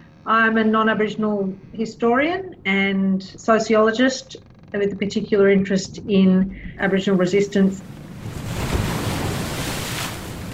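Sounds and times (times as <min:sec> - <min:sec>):
speech: 0:00.3 - 0:08.4
gusty wind roaring across the sea: 0:05.7 - 0:10.5
ocean waves crashing: 0:06.8 - 0:10.5.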